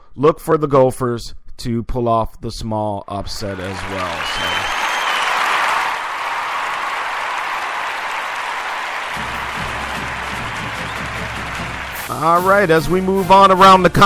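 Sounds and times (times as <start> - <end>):
speech: 0.2 - 4.8, 12.1 - 14.0
crowd cheering: 3.2 - 13.2
drumline cadence: 3.4 - 14.0.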